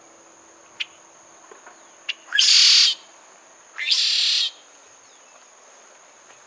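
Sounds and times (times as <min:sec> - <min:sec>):
steady insect hum: 0:00.0 - 0:06.4
red-shouldered blackbird harsh buzzy song in La Turba Cuba: 0:01.8 - 0:03.1, 0:03.8 - 0:05.4.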